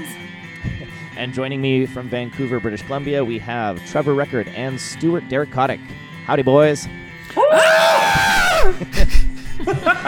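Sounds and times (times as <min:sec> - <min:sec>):
speech: 0:01.2 - 0:08.0, 0:08.7 - 0:10.0
two people screaming in pain: 0:07.3 - 0:08.8
laughter: 0:08.4 - 0:10.0.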